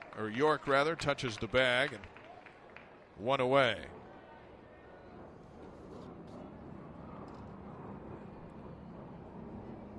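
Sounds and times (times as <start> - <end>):
speech: 0.2 - 2.2, 3.2 - 4.0
noisy outdoor ambience: 1.8 - 9.9
aircraft flyover rumbling: 5.1 - 9.9.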